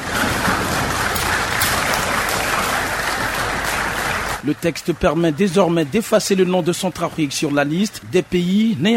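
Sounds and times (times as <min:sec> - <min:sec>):
lawmakers applauding in parliament chamber: 0:00.0 - 0:06.4
speech: 0:04.4 - 0:08.9.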